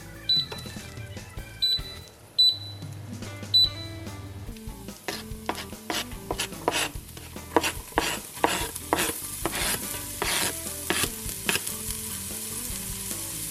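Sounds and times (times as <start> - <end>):
faint music: 0.0 - 13.4
knife chopping ingredients on a cutting board: 5.1 - 11.7.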